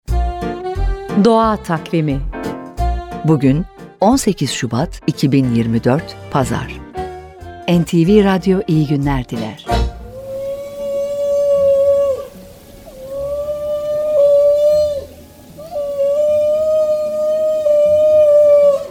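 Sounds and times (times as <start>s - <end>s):
speech: 1.2s - 2.4s, 3.2s - 6.8s, 7.7s - 9.8s
faint watery background: 3.2s - 18.8s
whale calls: 10.0s - 18.8s.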